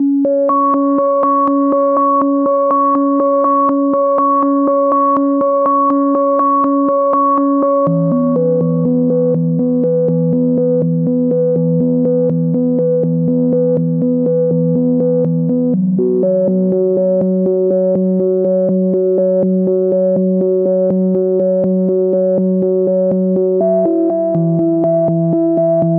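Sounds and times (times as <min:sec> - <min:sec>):
122 BPM melodic arpeggios in A major and F minor: 0:00.0 - 0:25.8.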